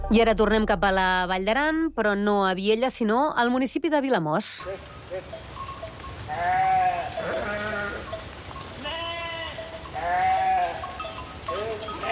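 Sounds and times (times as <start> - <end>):
speech: 0.1 - 5.5
flock of sheep and goats bleating beneath power lines in the Val d'Aran: 4.6 - 12.1.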